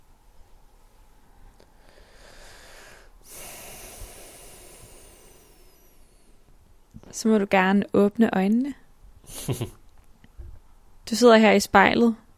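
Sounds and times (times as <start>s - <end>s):
slow deep breathing with eyes closed: 1.2s - 6.6s
speech: 7.1s - 9.8s, 11.1s - 12.2s
laughter: 9.3s - 9.8s.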